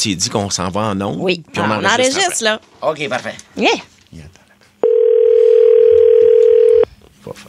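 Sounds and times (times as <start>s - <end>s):
speech: 0.0s - 4.4s
outgoing telephone call ringback tone: 4.8s - 6.9s.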